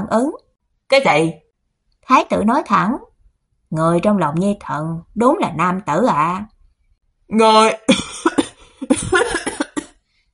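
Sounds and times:
speech: 0:00.1 - 0:01.4, 0:02.1 - 0:03.1, 0:03.7 - 0:06.5, 0:07.3 - 0:08.1, 0:08.8 - 0:09.6
old emperor's dry hacking cough: 0:07.9 - 0:10.0.

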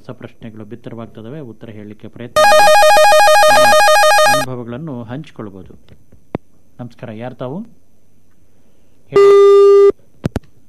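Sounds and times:
speech: 0:00.0 - 0:03.0, 0:03.6 - 0:06.2, 0:06.8 - 0:07.8, 0:09.1 - 0:09.5
telephone busy tone after a dropped call: 0:02.4 - 0:04.5, 0:09.2 - 0:09.9.

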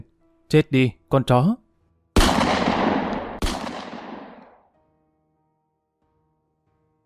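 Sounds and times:
speech: 0:00.5 - 0:01.6
handgun shots echoing in an abandoned container yard: 0:02.2 - 0:04.7.

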